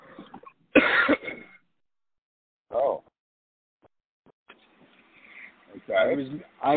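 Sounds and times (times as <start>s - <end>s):
person coughing after choking on water: 0.2s - 1.6s
speech: 6.0s - 6.7s.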